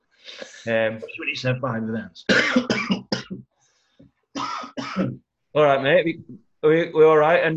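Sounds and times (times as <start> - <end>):
speech: 0.4 - 3.0, 5.0 - 7.5
person coughing harshly: 2.3 - 3.3, 4.4 - 5.1.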